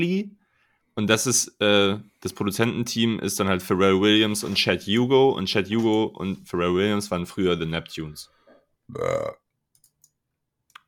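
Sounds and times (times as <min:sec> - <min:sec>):
speech: 0:00.0 - 0:00.4, 0:01.0 - 0:09.4
loud deep burp: 0:08.9 - 0:09.5.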